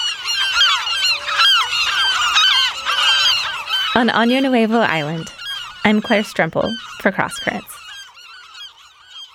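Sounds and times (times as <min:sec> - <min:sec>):
dense flock of gulls shrieking and squawking at night: 0:00.0 - 0:09.3
speech: 0:04.0 - 0:07.8.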